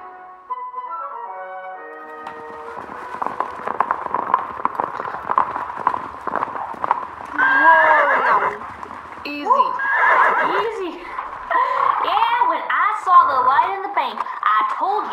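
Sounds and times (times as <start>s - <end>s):
melodic music: 0.0s - 3.0s
horses' hooves clopping at a walk: 1.7s - 15.1s
laughter: 10.4s - 12.2s.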